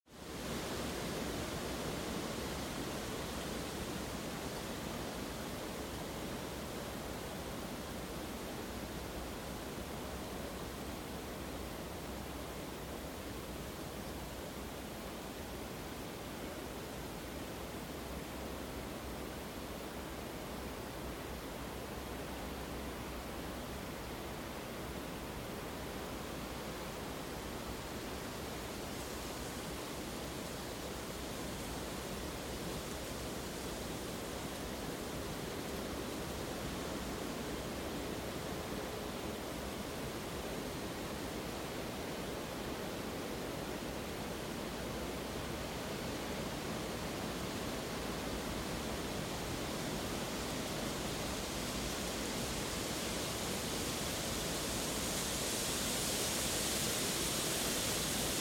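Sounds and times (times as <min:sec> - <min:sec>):
calm wind in a forest: 0:00.1 - 0:58.3.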